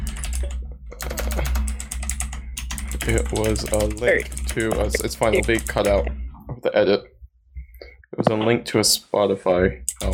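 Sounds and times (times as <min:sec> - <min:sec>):
typing a message on a computer keyboard: 0:00.0 - 0:06.1, 0:09.9 - 0:10.1
speech: 0:03.1 - 0:07.1, 0:08.2 - 0:10.1.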